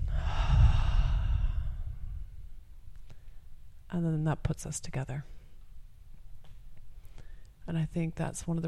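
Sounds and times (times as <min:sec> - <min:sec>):
long audible sighing exhale: 0:00.0 - 0:02.3
deep breath in: 0:00.0 - 0:02.4
speech: 0:03.9 - 0:05.4, 0:07.7 - 0:08.6.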